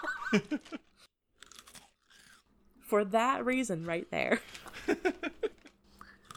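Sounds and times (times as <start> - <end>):
speech: 0.3 - 0.9, 2.9 - 5.4
crisp snack being chewed close to microphone: 0.4 - 2.8, 4.4 - 6.3.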